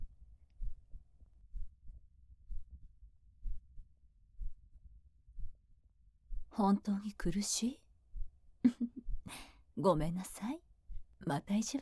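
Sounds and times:
slow heartbeat heard while being hugged: 0.0 - 6.5, 8.1 - 9.3, 10.8 - 11.2
speech: 6.6 - 7.8, 9.8 - 10.6, 11.3 - 11.8.

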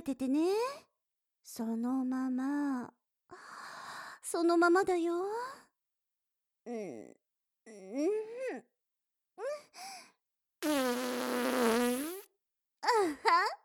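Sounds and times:
speech: 0.0 - 3.5, 4.3 - 5.6, 6.6 - 8.7, 12.8 - 13.6
long loud buzzy fart: 10.6 - 12.3.

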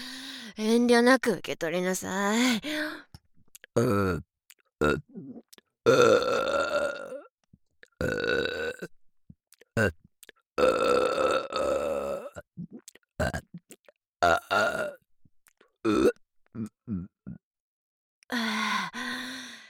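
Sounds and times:
speech: 0.6 - 3.1, 3.8 - 6.9, 9.8 - 10.0
loud burping: 3.8 - 7.3, 8.0 - 8.9, 10.6 - 13.5, 14.2 - 15.0, 15.9 - 17.4.

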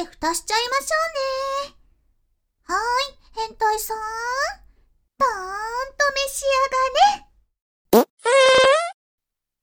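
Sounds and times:
speech: 0.0 - 1.8, 2.7 - 4.6, 5.2 - 7.2
fart: 8.0 - 9.0.

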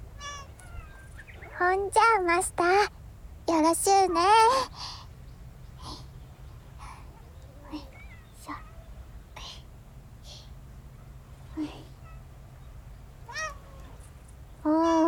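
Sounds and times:
several cats meowing while being fed: 0.2 - 1.6, 7.2 - 9.0, 13.2 - 14.0
speech: 1.6 - 4.9
soft breathy sounds: 5.8 - 8.6, 9.4 - 10.6, 11.5 - 12.0.

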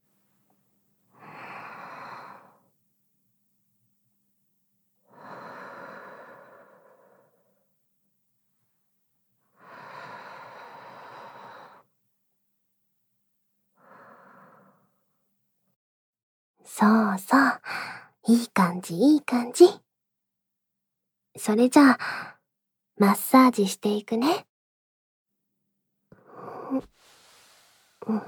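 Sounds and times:
slow deep human breathing with long thin exhales: 1.1 - 2.7, 5.1 - 7.6, 9.6 - 11.9, 13.8 - 15.0, 26.2 - 28.2
speech: 16.7 - 19.8, 21.4 - 22.3, 23.0 - 24.5, 26.7 - 26.9, 28.1 - 28.2.

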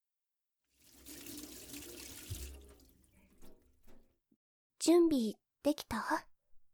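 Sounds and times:
water running from a tap into a sink while hands are washed: 0.7 - 3.6
speech: 4.8 - 6.3.

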